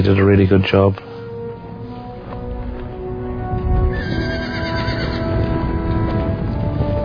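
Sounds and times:
speech: 0:00.0 - 0:01.2
cavalry charge of horses with armour-plated riders galloping: 0:02.5 - 0:07.0
horse whinnying: 0:03.9 - 0:05.4.

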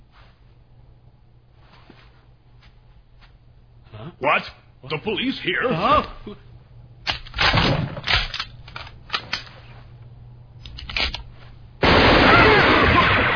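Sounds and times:
speech: 0:04.2 - 0:06.5
gunfire during an armed confrontation: 0:11.8 - 0:13.3.

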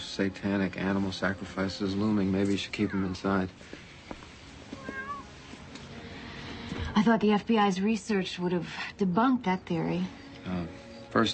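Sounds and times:
speech: 0:00.2 - 0:03.8, 0:07.0 - 0:11.3
cat at a door meowing: 0:02.6 - 0:03.4, 0:04.8 - 0:05.4.

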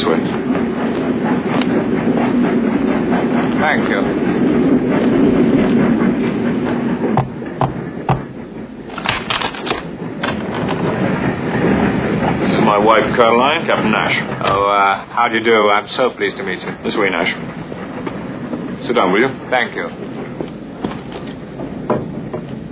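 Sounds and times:
train rumbling along the rails: 0:00.0 - 0:22.6
speech: 0:13.2 - 0:17.6, 0:18.9 - 0:20.1.

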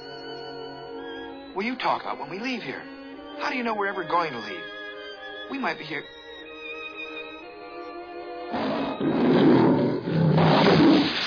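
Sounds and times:
speech: 0:01.6 - 0:04.8, 0:05.5 - 0:06.2
tiger roaring: 0:08.5 - 0:11.2.

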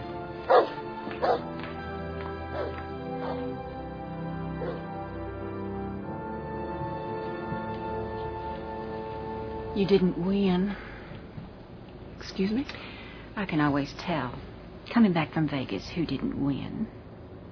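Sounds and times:
steady humming music-like background: 0:00.0 - 0:17.4
dog barking sharply: 0:00.5 - 0:01.4, 0:02.5 - 0:03.5, 0:04.6 - 0:04.9
dog yipping and whimpering softly: 0:04.6 - 0:04.8
speech: 0:09.8 - 0:10.9, 0:12.3 - 0:17.0.

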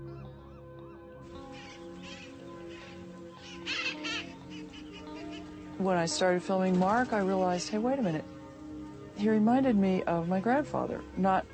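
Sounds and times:
flock of ducks honking and calling: 0:01.4 - 0:05.6
speech: 0:05.8 - 0:08.3, 0:09.2 - 0:11.5.

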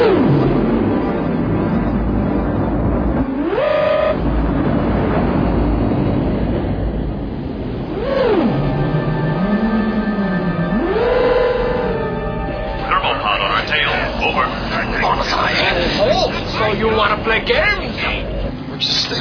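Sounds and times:
heavy truck engine rumbling and revving while driving: 0:00.0 - 0:19.2.

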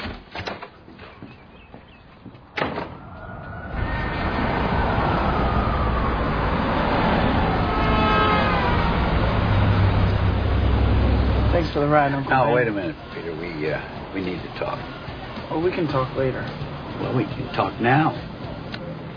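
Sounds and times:
car road noise in traffic: 0:00.8 - 0:19.1
car engine tones rising and falling: 0:02.9 - 0:12.3
speech: 0:11.8 - 0:18.3.

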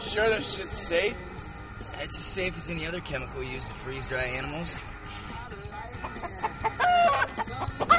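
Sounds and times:
speech: 0:00.2 - 0:01.3, 0:02.0 - 0:05.2
chicken clucking: 0:06.0 - 0:07.9.

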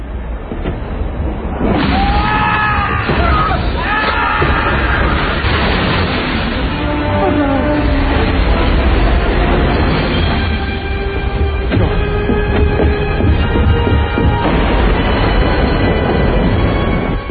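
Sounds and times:
subway train rumbling along the rails: 0:00.0 - 0:17.3
high metallic squeal of subway train: 0:06.6 - 0:11.7.

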